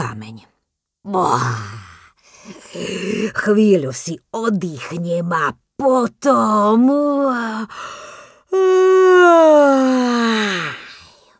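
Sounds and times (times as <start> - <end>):
speech: 0.1 - 1.8, 2.4 - 10.8
long drawn-out yawn: 8.5 - 11.1.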